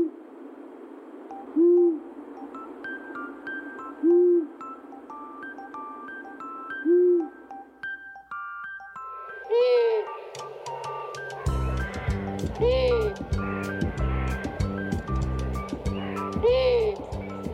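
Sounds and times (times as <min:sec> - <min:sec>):
steady hiss: 0:00.0 - 0:17.5
faint higher chirping notes: 0:01.2 - 0:17.5
long-eared owl giving low soft hoots: 0:01.4 - 0:02.1, 0:04.0 - 0:04.6, 0:06.8 - 0:07.3, 0:09.5 - 0:17.1.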